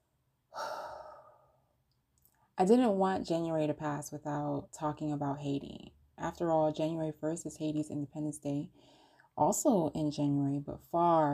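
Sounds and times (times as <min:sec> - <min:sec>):
deep breath exhale: 0:00.5 - 0:01.6
speech: 0:02.6 - 0:11.3.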